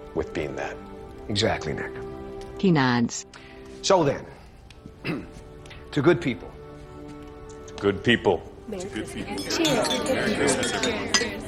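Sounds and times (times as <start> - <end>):
speech: 0.2 - 4.4, 5.9 - 6.5, 7.8 - 11.4
low murmur of chatter: 9.0 - 11.4
mugs clinking together in a toast: 9.3 - 11.4.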